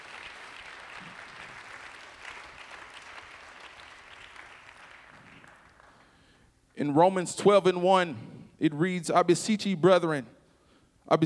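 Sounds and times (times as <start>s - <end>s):
large audience clapping hands: 0.0s - 6.4s
speech: 6.8s - 10.4s, 11.1s - 11.2s.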